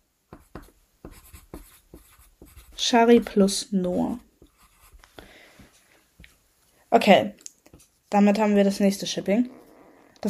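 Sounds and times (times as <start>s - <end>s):
pen scratching on paper writing by hand: 0.3s - 5.0s
speech: 2.8s - 4.3s, 7.0s - 7.4s, 8.1s - 9.6s.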